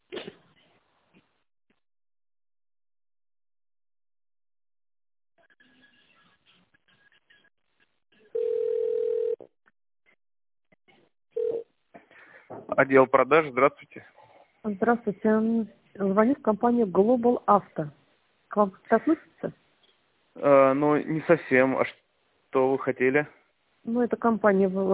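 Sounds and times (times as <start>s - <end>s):
telephone ringing tone while holding on a company's phone line: 8.3s - 9.4s, 11.4s - 11.6s
speech: 12.8s - 19.6s, 20.4s - 24.9s.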